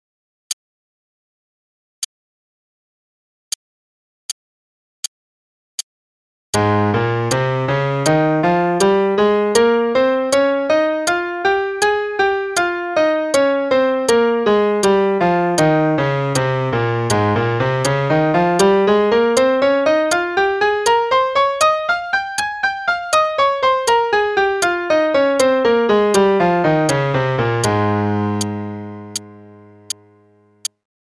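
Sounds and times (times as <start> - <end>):
A-flat major scale played in eighth notes and triplets: 6.6 - 30.6.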